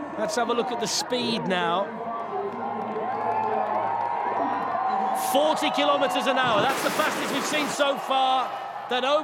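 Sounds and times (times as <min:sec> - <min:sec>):
speech: 0:00.2 - 0:02.0, 0:05.2 - 0:09.2
crowd cheering on a bobsleigh run: 0:00.5 - 0:09.2.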